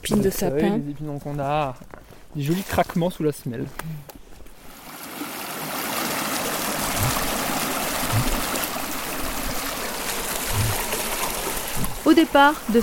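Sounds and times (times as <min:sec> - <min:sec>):
speech: 0:00.0 - 0:04.2, 0:12.0 - 0:12.8
small river babbling and rushing: 0:04.6 - 0:12.8.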